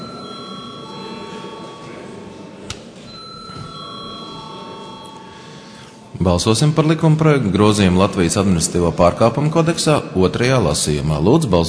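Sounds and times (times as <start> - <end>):
electric bell ringing in a parliament chamber before a vote: 0.0 - 2.5, 3.1 - 6.1
low murmur in a parliament chamber: 0.0 - 11.6
speech: 6.2 - 11.6.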